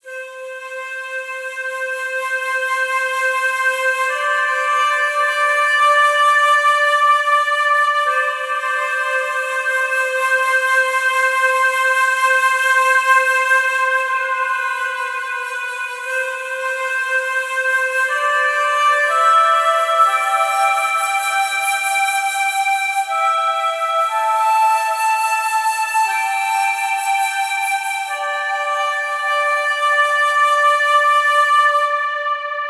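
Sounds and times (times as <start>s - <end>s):
flute in A minor at 60 BPM: 0.0s - 32.6s.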